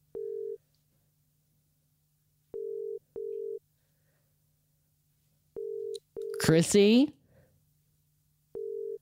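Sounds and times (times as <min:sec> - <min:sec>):
telephone ringback tone in paired beeps: 0:00.1 - 0:00.6, 0:02.6 - 0:03.6, 0:05.6 - 0:06.4, 0:08.5 - 0:09.0
speech: 0:06.4 - 0:07.2.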